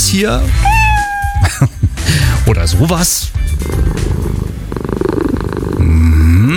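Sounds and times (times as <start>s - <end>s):
speech: 0.1s - 0.8s, 1.5s - 4.2s
recorded cat meowing played from a smartphone: 0.5s - 1.5s
recorded cat purring played from a smartphone: 3.4s - 6.0s.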